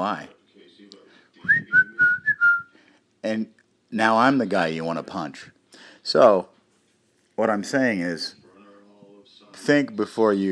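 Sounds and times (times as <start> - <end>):
speech: 0.0 - 0.4, 3.2 - 6.5, 7.4 - 8.4, 9.6 - 10.5
person whistling a song: 1.4 - 2.7.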